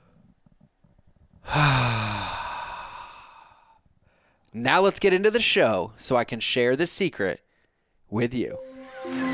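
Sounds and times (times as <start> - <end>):
big deep breath released as a long sigh: 1.4 - 4.4
speech: 4.6 - 7.4, 8.1 - 9.2.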